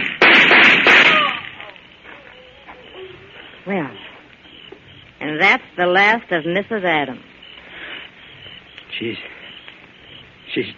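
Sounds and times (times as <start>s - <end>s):
gunshots fired during a confrontation: 0.0s - 1.7s
speech: 3.7s - 4.0s, 5.4s - 7.3s, 9.0s - 9.4s, 10.6s - 10.7s.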